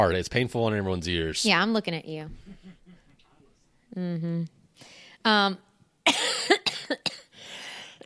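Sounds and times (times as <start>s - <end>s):
speech: 0.0s - 2.6s, 3.9s - 6.2s
harsh fit of coughing: 6.1s - 7.4s.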